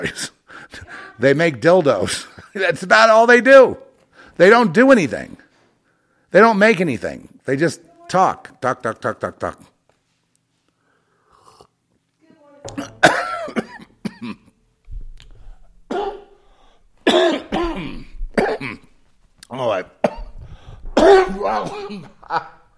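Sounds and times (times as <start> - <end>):
speech: 0.0 - 0.4, 1.2 - 3.8, 4.4 - 5.4, 6.3 - 9.7, 21.4 - 22.5
person clearing throat: 12.7 - 14.6, 15.9 - 16.4, 17.0 - 19.0, 20.0 - 20.4, 21.0 - 22.2
person coughing: 12.7 - 14.6, 15.9 - 16.4, 17.0 - 19.0, 20.0 - 22.2.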